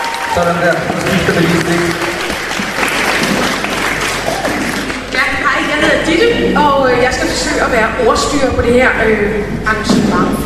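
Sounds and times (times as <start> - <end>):
audience applause at a panel event: 0.0 - 5.2
speech: 0.4 - 2.1, 5.8 - 10.4.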